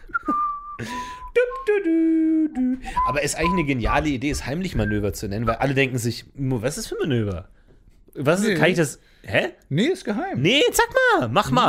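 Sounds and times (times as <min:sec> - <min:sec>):
person whistling: 0:00.0 - 0:03.8, 0:04.7 - 0:05.7
speech: 0:00.8 - 0:01.0, 0:01.8 - 0:07.6, 0:08.2 - 0:11.6.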